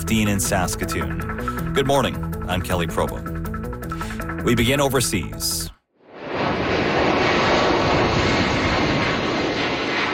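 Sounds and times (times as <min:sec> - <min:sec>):
speech: 0:00.1 - 0:03.3, 0:04.4 - 0:05.7
jet airplane taking off on an evacuation flight: 0:06.1 - 0:10.1.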